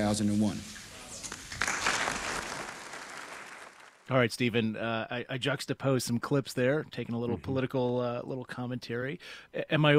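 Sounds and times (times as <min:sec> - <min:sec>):
speech: 0:00.0 - 0:00.8, 0:04.1 - 0:09.9
thunderous applause from a large crowd: 0:01.2 - 0:04.1.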